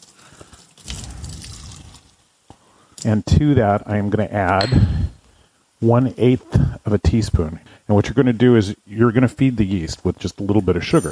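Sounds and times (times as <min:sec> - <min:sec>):
warm water pouring into a bowl: 0:00.0 - 0:02.2
speech: 0:03.0 - 0:05.0, 0:05.8 - 0:11.0.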